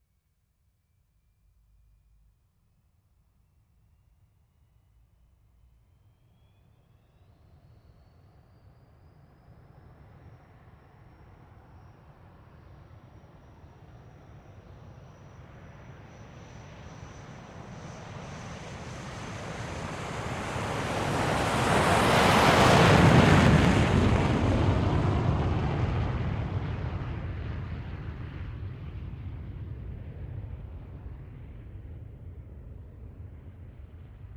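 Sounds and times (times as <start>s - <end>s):
MiG-15 UTI jet taking off heard from 50 metres outside: 16.5s - 32.1s.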